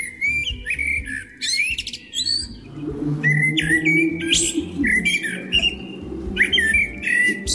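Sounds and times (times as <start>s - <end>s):
common blackbird singing fluting phrases and higher chirps: 0.0s - 7.5s
low rumble: 2.4s - 7.5s.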